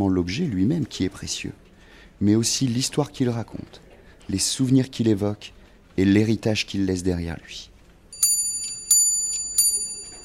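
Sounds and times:
speech: 0:00.0 - 0:07.7
pendulum clock striking the hour with metallic chimes: 0:08.2 - 0:10.2.

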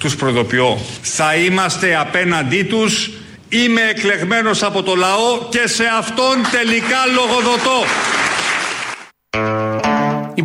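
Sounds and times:
speech: 0:00.0 - 0:08.2, 0:09.3 - 0:09.6
crowd applause after a political speech: 0:06.4 - 0:09.2.

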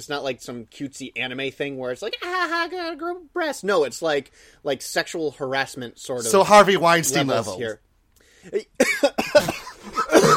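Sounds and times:
speech: 0:00.0 - 0:10.2
man coughing harshly: 0:08.8 - 0:10.3.

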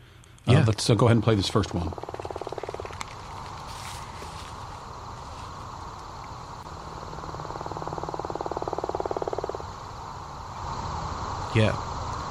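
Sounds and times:
speech: 0:00.6 - 0:02.2, 0:11.6 - 0:11.9
gopher frog call, low rolling snore of rapid pulses: 0:01.6 - 0:04.5, 0:06.6 - 0:11.2.

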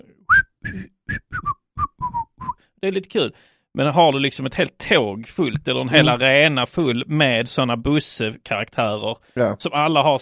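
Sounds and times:
person whistling a tune: 0:00.3 - 0:02.6
speech: 0:02.8 - 0:10.2.

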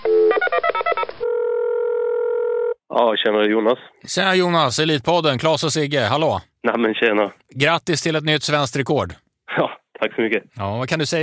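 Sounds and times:
steady telephone tone: 0:00.0 - 0:00.4, 0:01.2 - 0:02.8
speech: 0:03.0 - 0:11.2.

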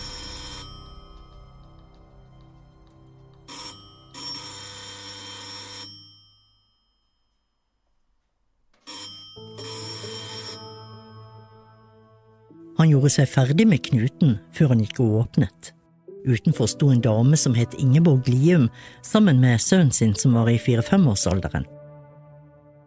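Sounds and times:
doorbell ringing: 0:00.0 - 0:07.8, 0:08.8 - 0:12.4
speech: 0:12.8 - 0:21.8.

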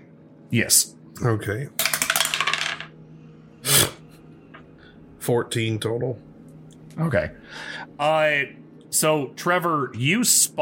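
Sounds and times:
speech: 0:00.5 - 0:01.8, 0:05.3 - 0:06.3, 0:07.0 - 0:10.5
dice clattering across a hard tabletop: 0:01.8 - 0:02.9.

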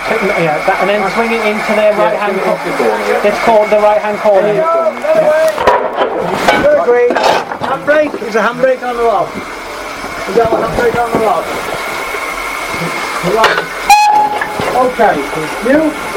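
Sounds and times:
people talking over locomotive noise: 0:00.0 - 0:09.4, 0:10.2 - 0:11.7, 0:12.7 - 0:16.0
steam locomotive running in the Severn Valley heard from the footplate: 0:00.0 - 0:16.1
steam locomotive whistle blast: 0:13.8 - 0:14.8.

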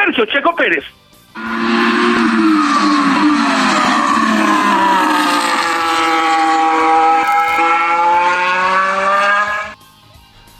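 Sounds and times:
speech: 0:00.2 - 0:01.8
Red Bull RB18 Formula 1 race car engine revving in practice: 0:01.3 - 0:09.8.

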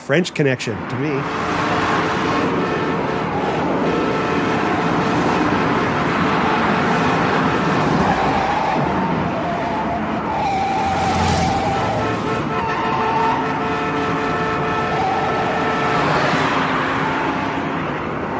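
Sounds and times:
old-timey round-bodied four-door sedans racing in a car chase on a dirt road: 0:00.0 - 0:18.3
speech: 0:00.1 - 0:01.6
car horn toot: 0:10.9 - 0:16.4.

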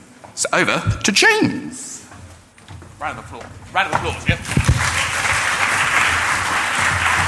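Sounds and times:
speech: 0:00.4 - 0:02.0, 0:03.0 - 0:05.1
room full of people applauding: 0:04.2 - 0:07.2
people cheering: 0:04.4 - 0:07.2.

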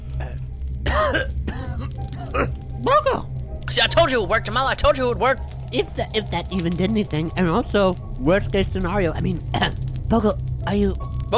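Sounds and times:
low steady hum: 0:00.0 - 0:11.3
person who has just woken coughing hoarsely: 0:00.2 - 0:02.6
speech: 0:01.1 - 0:01.4, 0:02.3 - 0:11.3.

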